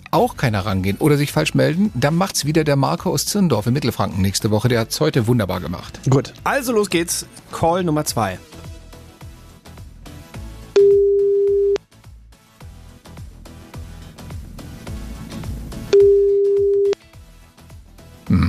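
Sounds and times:
music: 0.0s - 18.4s
speech: 0.1s - 8.5s
telephone ringback tone during outgoing call: 10.8s - 11.8s, 15.9s - 17.0s.

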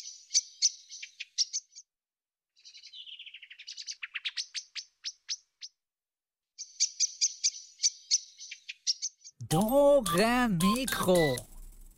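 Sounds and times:
blackbird singing: 0.0s - 1.8s, 2.6s - 5.4s, 6.6s - 9.4s
speech: 9.5s - 11.5s.

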